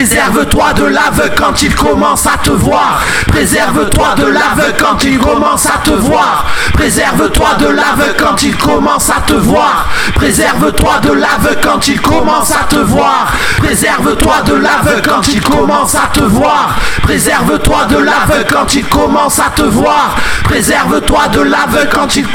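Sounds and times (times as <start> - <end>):
reference voice: 0.0 - 22.3.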